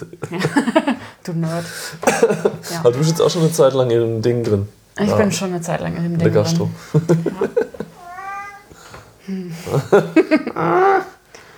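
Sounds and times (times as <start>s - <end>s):
laughter: 0.0s - 1.1s, 2.0s - 3.0s, 6.8s - 8.1s, 9.6s - 11.2s
speech: 0.0s - 7.8s, 9.3s - 11.2s
cat meowing: 8.0s - 8.8s.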